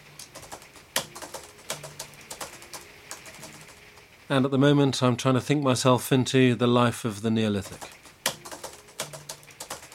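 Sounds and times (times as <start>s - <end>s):
typing on a clumsy very old-fashioned laptop keyboard: 0.2s - 3.9s, 7.7s - 9.9s
speech: 4.3s - 8.0s.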